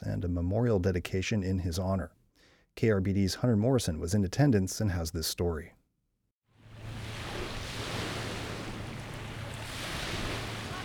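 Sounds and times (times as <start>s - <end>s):
speech: 0.0s - 2.2s, 2.8s - 5.8s
ocean surf breaking waves heard from a distance: 6.6s - 10.8s.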